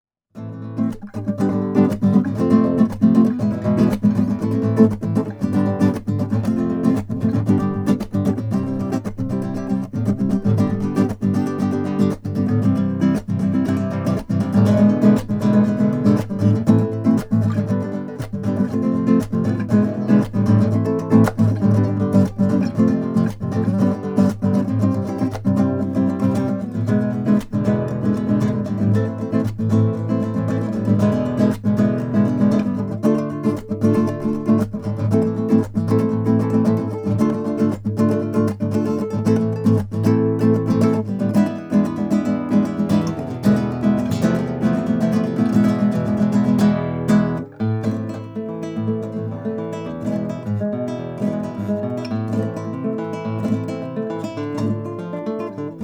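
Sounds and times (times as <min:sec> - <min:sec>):
crossover nylon string guitar: 0:00.4 - 0:55.8.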